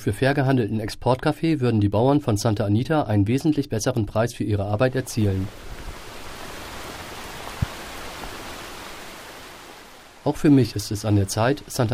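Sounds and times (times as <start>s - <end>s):
speech: 0.0s - 5.8s, 10.2s - 11.9s
steady rain falling in Santa Anita La Union: 4.9s - 11.9s.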